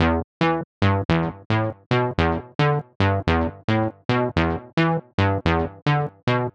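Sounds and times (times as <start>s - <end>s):
vintage electro pluck lead: 0.0s - 6.5s.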